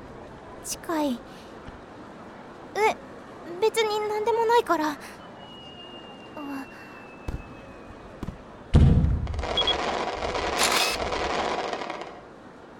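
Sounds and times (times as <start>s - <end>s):
speech: 0.7s - 1.5s, 2.8s - 5.2s
fireworks popping: 8.8s - 12.2s.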